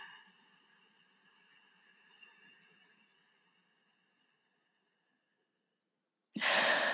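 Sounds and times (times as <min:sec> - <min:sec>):
ujjayi breathing drawn through the back of the throat: 0:06.4 - 0:06.9.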